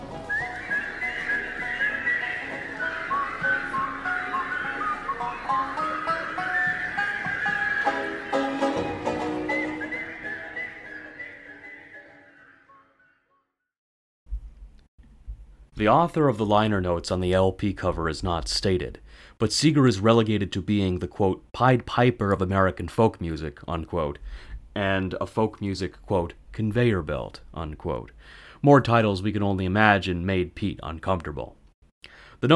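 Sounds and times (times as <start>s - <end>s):
person whistling a lively wavering melody: 0.0s - 13.0s
speech: 15.8s - 31.6s, 32.4s - 32.5s.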